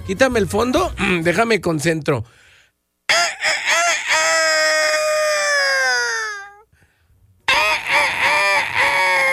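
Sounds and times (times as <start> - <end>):
speech: 0.1 - 2.4
man imitating a rooster crowing: 3.1 - 6.7, 7.5 - 9.3.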